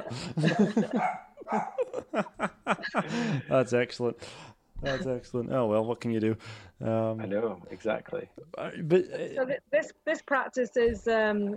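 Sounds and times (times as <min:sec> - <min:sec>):
laughter: 0:00.0 - 0:03.7
speech: 0:00.1 - 0:02.3, 0:03.0 - 0:11.5
dog barking at home: 0:00.9 - 0:02.0.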